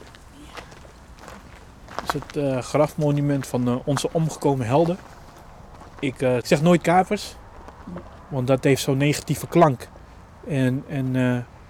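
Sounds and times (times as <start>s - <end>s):
footsteps crunching along a gravel path: 0.0s - 8.4s
speech: 2.1s - 5.1s, 6.0s - 11.5s.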